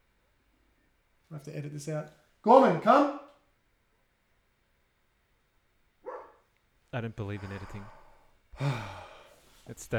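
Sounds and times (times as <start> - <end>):
speech: 1.3 - 3.2, 7.0 - 8.0, 8.6 - 9.0, 9.7 - 9.9
single short dog bark: 6.0 - 6.5.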